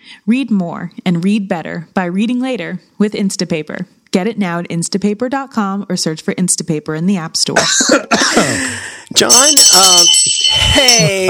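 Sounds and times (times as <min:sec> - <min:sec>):
speech: 0:00.2 - 0:11.2
small bell ringing: 0:09.2 - 0:11.2.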